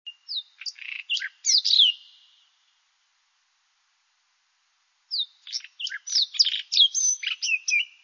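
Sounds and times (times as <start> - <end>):
white-throated robin Irania gutturalis singing: 0.1 - 2.8, 5.1 - 8.0.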